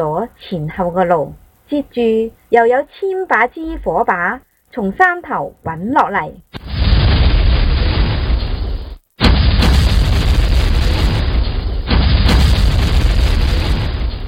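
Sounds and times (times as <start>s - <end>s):
speech: 0.0s - 6.5s
explosions of carts packed with gunpowder: 6.6s - 14.2s.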